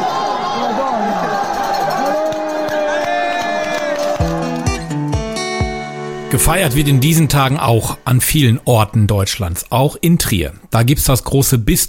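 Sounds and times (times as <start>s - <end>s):
shouts and whoops: 0.0s - 4.8s
crowd cheering and chattering as cyclists ride through the Vatican: 0.0s - 5.3s
speech: 6.3s - 11.8s.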